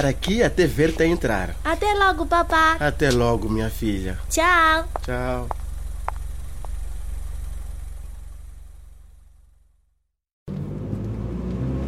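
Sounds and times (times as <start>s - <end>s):
speech: 0.0s - 5.6s
car engine rumbling: 0.0s - 11.8s.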